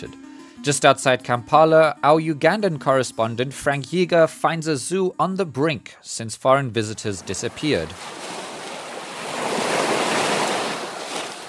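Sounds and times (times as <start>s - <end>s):
speech: 0.0s - 8.4s
Lake Victoria waves breaking in Uganda near Kampala: 7.0s - 11.4s.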